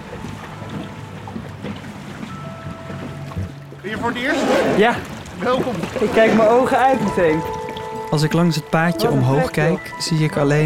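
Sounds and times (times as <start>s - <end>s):
motorboat hull thumping on choppy waves: 0.0s - 8.0s
small motorboat engine droning: 0.0s - 10.0s
speech: 3.8s - 10.6s.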